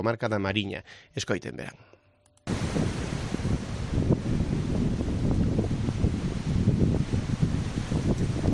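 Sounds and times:
speech: 0.0 - 2.0
strong wind buffeting a microphone: 2.5 - 8.5.

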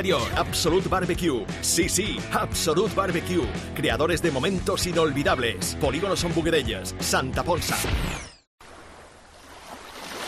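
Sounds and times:
speech: 0.0 - 8.2
rushing wash of sea waves: 8.6 - 10.2.

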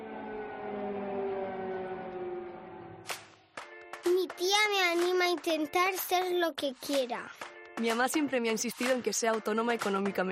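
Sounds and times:
sirens wailing: 0.0 - 3.2
speech: 4.4 - 10.3.

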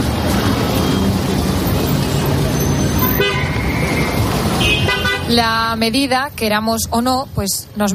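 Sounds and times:
busy city street traffic engine rumble: 0.0 - 7.9
car horns honking: 2.0 - 5.4
speech: 5.3 - 7.9.

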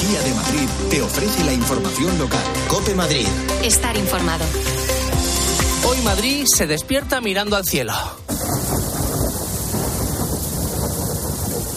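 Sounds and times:
speech: 0.1 - 4.9, 5.8 - 8.6
deep continuous thunder rumble in Madrid Spain: 8.3 - 11.7
heavy rain pouring in Madrid Spain: 8.3 - 11.7.

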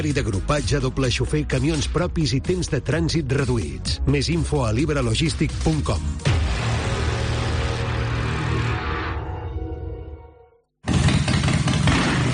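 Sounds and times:
speech: 0.0 - 6.3
loud burst of sound: 6.2 - 9.2
Harley-Davidson motorcycle engine running with a rough rumble: 10.9 - 12.3.

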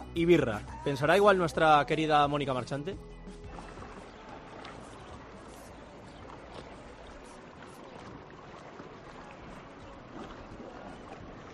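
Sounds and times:
speech: 0.2 - 3.1
sea waves breaking on rocky coves of Menorca: 3.6 - 11.5.

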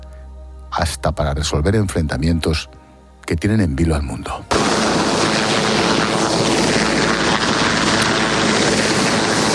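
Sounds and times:
speech: 0.8 - 5.0
helicopter passing overhead: 4.5 - 9.5.

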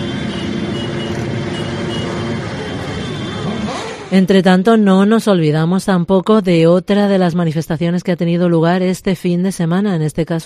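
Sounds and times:
motorcycle engines roaring in a protest march: 0.0 - 5.0
traffic noise: 0.0 - 5.6
speech: 4.1 - 10.4.

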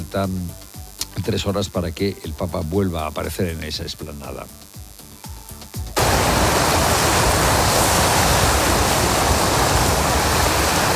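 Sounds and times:
speech: 0.1 - 0.6, 1.2 - 4.7
ocean waves crashing on rock: 6.0 - 10.9.

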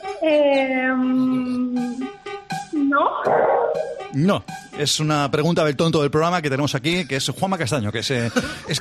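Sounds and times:
speech: 0.2 - 1.3, 4.1 - 8.7
dog giving a rising, strained whine of protest: 3.1 - 4.0.

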